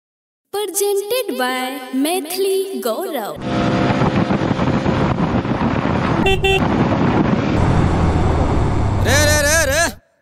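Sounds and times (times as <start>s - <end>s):
speech: 0.6s - 4.0s, 6.3s - 7.0s
loud wind-like noise: 3.4s - 9.8s
vehicle rumbling along a road: 3.4s - 10.0s
car horn honk: 6.2s - 6.7s.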